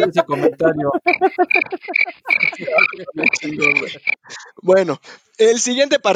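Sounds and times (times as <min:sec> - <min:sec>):
laughter: 0:00.0 - 0:04.6
speech: 0:00.0 - 0:06.1
cricket chirping sound effect: 0:01.1 - 0:04.3.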